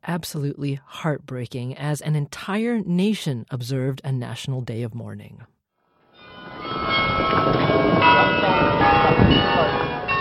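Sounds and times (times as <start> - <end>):
speech: 0.0 - 5.5
church bells ringing together in a peal: 6.2 - 10.2.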